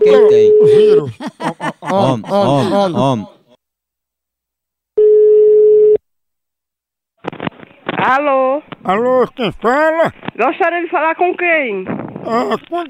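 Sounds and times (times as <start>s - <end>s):
laughter: 0.0s - 3.6s, 8.9s - 10.2s, 12.3s - 12.8s
speech: 0.3s - 3.4s, 8.0s - 12.8s
telephone ringback tone of a call being placed: 5.0s - 6.0s.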